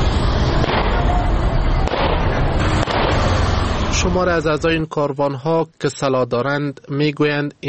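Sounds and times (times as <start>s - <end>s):
outdoor crowd noise in Kabul Afghanistan: 0.0s - 7.6s
pistol and Kalashnikov gunshots fired into the air in Kabul Afghanistan: 0.4s - 3.9s
speech: 4.0s - 7.6s.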